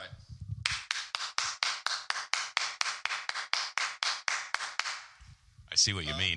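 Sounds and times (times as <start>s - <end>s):
hand clapping echoing in a room: 0.6s - 5.2s
speech: 5.8s - 6.3s.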